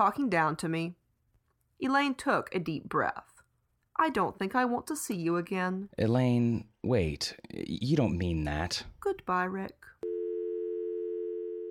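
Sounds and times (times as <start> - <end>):
speech: 0.0 - 1.0, 1.8 - 3.3, 4.0 - 10.0
telephone line tone: 10.0 - 11.6.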